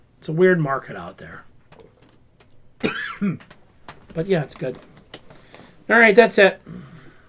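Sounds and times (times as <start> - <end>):
speech: 0.2 - 1.5, 3.2 - 3.6, 4.2 - 4.9, 5.9 - 6.9
person coughing harshly: 2.8 - 3.5.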